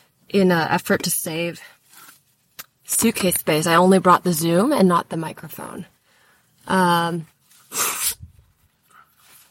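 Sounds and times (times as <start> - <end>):
speech: 0.3 - 1.8, 2.9 - 5.9, 6.6 - 7.8
nose blowing into the microphone: 7.7 - 8.3.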